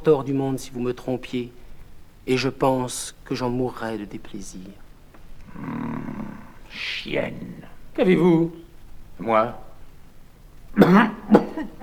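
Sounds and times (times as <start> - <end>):
speech: 0.0 - 1.6, 2.3 - 4.8, 5.5 - 5.9, 6.7 - 8.6, 9.2 - 9.6, 10.8 - 11.8
performer coughing in a French stage comedy: 10.8 - 11.8.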